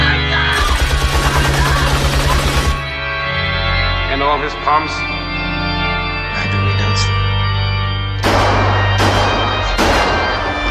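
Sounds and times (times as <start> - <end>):
low organ-like drone: 0.0 - 10.7
gunshots in a film scene: 0.6 - 2.9, 8.2 - 10.7
speech: 4.3 - 5.2.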